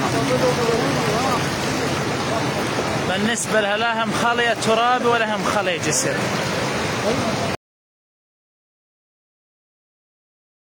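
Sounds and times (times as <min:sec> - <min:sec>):
floodwater rushing through a breached earth embankment: 0:00.0 - 0:07.6
speech: 0:03.2 - 0:07.5.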